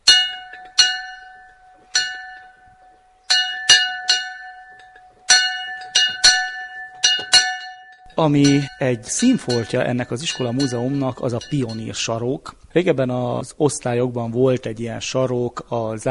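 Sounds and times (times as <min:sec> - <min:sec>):
old school bell clanging: 0:00.0 - 0:12.4
speech: 0:08.2 - 0:16.0.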